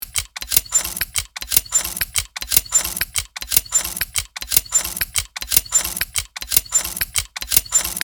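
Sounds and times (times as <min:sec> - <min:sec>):
small industrial machine: 0:00.0 - 0:08.0.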